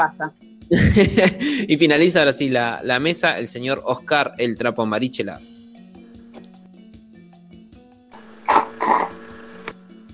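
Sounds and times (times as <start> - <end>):
speech: 0.0 - 5.5
laughter: 0.7 - 1.9
gurgling slurps of mate through a straw from a nearly dry gourd: 8.2 - 9.7.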